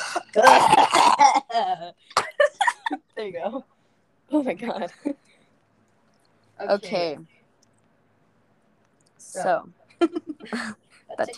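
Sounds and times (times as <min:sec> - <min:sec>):
person coughing in a harsh rasping fit: 0:00.0 - 0:02.8
speech: 0:00.2 - 0:02.2, 0:02.9 - 0:05.3, 0:06.6 - 0:07.4, 0:09.3 - 0:11.3.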